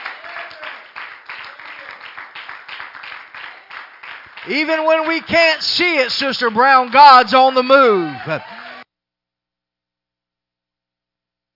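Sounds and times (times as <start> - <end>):
large group of people clapping: 0.0 - 8.8
speech: 4.4 - 8.6.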